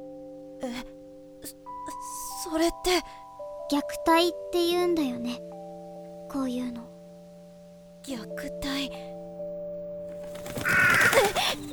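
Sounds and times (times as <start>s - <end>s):
speech: 0.7s - 5.5s, 6.3s - 6.9s, 8.0s - 9.1s, 10.6s - 11.7s
crow cawing at night: 10.3s - 11.7s.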